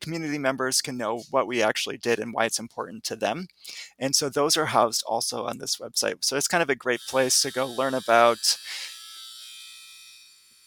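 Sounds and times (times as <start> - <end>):
speech: 0.0 - 8.9
clothes dryer end-of-cycle electronic buzzer: 7.0 - 10.6.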